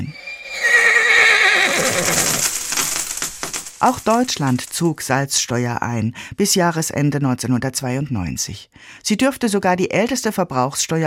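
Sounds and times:
horse neighing: 0.0 - 3.0
speech: 2.0 - 2.4, 3.8 - 11.0.

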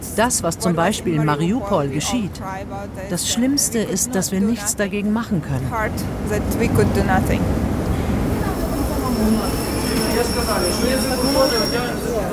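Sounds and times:
dense murmur of people talking in a railway station: 0.0 - 12.3
train rumbling in a railway station: 0.0 - 12.3
speech: 0.2 - 7.8, 9.2 - 12.3
train wheels squealing in high steady tones: 8.4 - 12.3.

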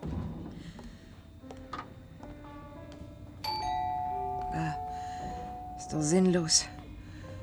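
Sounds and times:
doorbell ringing with chime tones: 3.4 - 6.8
speech: 5.9 - 6.8.

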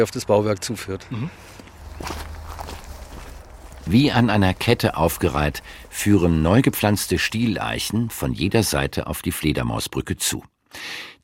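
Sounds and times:
speech: 0.0 - 2.2, 3.9 - 11.2
steady low hum: 1.3 - 9.0
footsteps on an outdoor path: 1.4 - 8.2.

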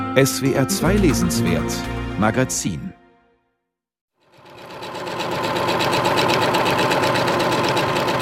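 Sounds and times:
speech: 0.2 - 3.0
sewing machines rattering: 4.3 - 8.1.

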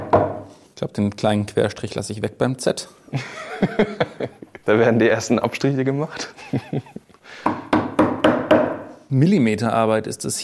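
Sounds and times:
speech: 0.8 - 7.6, 9.1 - 10.4
laughter: 3.1 - 4.8, 6.0 - 7.2
wood splitting while letters are carved into it: 7.4 - 8.9.

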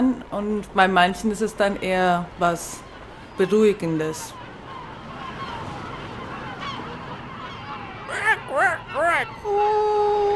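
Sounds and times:
speech: 0.0 - 2.8, 3.4 - 4.4, 9.2 - 10.3
seagulls squawking: 2.7 - 10.3.

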